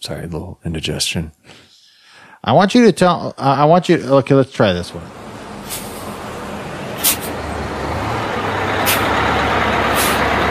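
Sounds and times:
speech: 0.0s - 1.7s, 2.4s - 5.9s
Greyhound bus engine idling: 4.9s - 10.4s
bus air brakes hissing: 5.5s - 7.4s, 8.8s - 10.4s.

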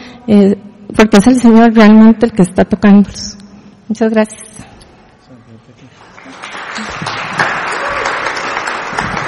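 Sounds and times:
speech: 0.2s - 4.5s
audience applause: 6.0s - 9.2s.

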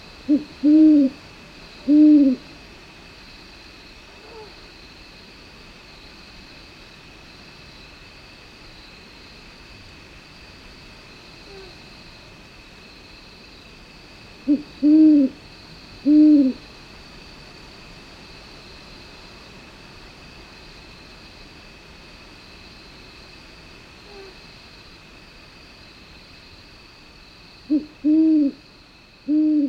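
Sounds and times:
faint steady hiss of night ambience: 0.0s - 29.6s
great horned owl hooting: 0.3s - 1.2s, 1.8s - 2.4s, 14.4s - 15.4s, 16.0s - 16.6s, 27.7s - 28.6s, 29.3s - 29.6s.

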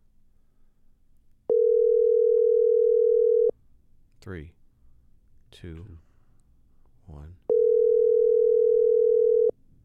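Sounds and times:
app call ringing tone: 1.5s - 3.5s, 7.5s - 9.5s
speech: 4.2s - 4.6s, 5.5s - 6.1s, 7.1s - 7.6s.

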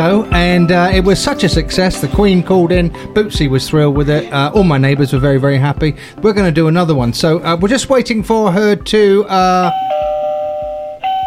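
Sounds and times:
speech: 0.0s - 10.1s
doorbell ringing with a sustained electric tone: 9.6s - 11.2s.

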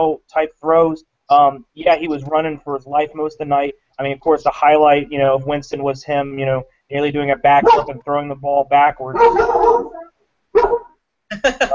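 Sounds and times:
speech: 0.0s - 10.0s
dog barking: 7.6s - 8.0s, 9.1s - 11.0s.

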